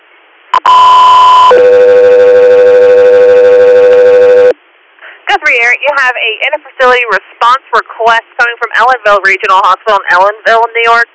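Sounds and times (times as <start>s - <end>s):
two-tone radio dispatch alert to an air unit: 0.6s - 4.5s
speech: 5.5s - 11.1s.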